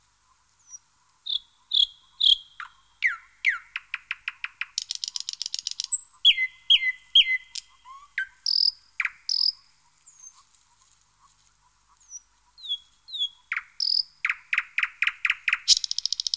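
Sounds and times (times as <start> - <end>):
thrush nightingale singing: 0.6 - 10.5, 12.0 - 16.3.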